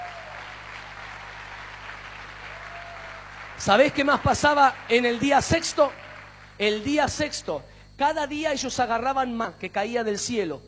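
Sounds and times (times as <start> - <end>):
audience applauding: 0.0 - 6.9
speech: 3.6 - 6.0, 6.6 - 10.6.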